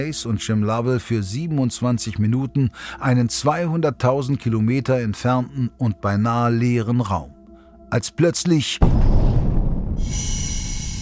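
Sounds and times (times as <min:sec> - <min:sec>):
speech: 0:00.0 - 0:09.3, 0:10.0 - 0:10.4
heavy booming blast: 0:08.8 - 0:10.6.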